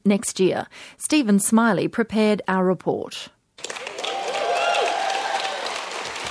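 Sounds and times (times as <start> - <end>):
speech: 0.0 - 3.7
conference delegates applauding enthusiastically: 3.6 - 6.2
faint voices and cheers of conference delegates: 3.7 - 6.2.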